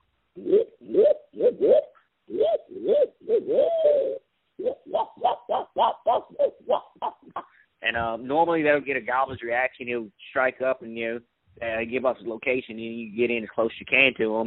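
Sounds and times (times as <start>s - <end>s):
speech: 0.4s - 1.1s, 8.0s - 14.4s
imitated owl hooting as turkey hunting locator call: 0.4s - 7.7s.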